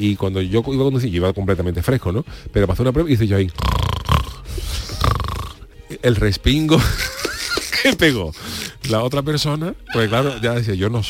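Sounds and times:
speech: 0.0 - 3.8, 6.0 - 7.1, 7.8 - 11.0
voice imitating loud snoring: 3.5 - 5.7
laughter: 6.8 - 8.1.

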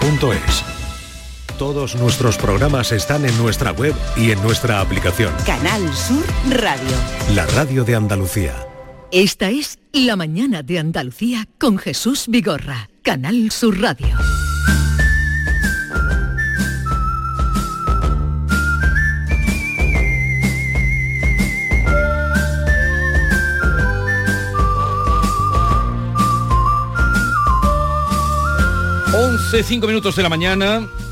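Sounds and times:
full-band musical backing with percussive beats: 0.0 - 9.0, 14.2 - 31.1
speech: 0.2 - 0.7, 1.6 - 14.4, 29.5 - 31.0
clear bright whistled melody: 14.1 - 31.1.

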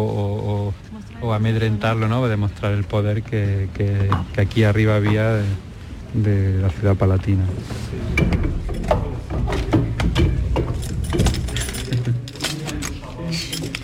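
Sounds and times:
speech: 1.3 - 9.3
sharp metallic clicks and clunks from an old door lock mechanism: 8.1 - 13.8
keys clinking and rattling in an old door lock: 10.2 - 13.8.

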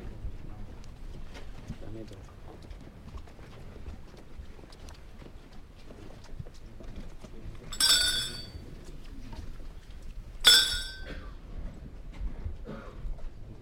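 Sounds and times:
funeral procession footsteps shuffling and tapping on a cobblestone street: 0.0 - 13.4
sharp metallic clinks: 7.7 - 8.6, 10.4 - 11.2.

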